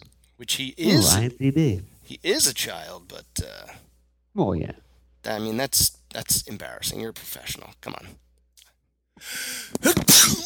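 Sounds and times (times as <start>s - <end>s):
speech: 0.4s - 8.2s, 9.2s - 10.4s
loud sneeze: 9.8s - 10.4s.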